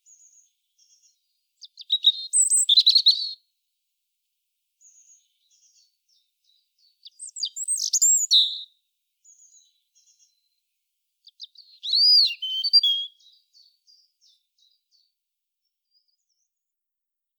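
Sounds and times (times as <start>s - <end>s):
European robin singing: 0.0s - 3.4s, 4.8s - 10.6s, 11.2s - 15.2s.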